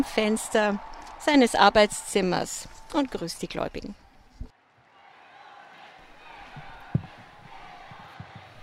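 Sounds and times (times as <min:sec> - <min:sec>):
large crowd of faithful applauding in an open outdoor space: 0:00.0 - 0:03.1, 0:05.4 - 0:08.6
speech: 0:00.0 - 0:04.0
single soft thump: 0:06.5 - 0:08.5.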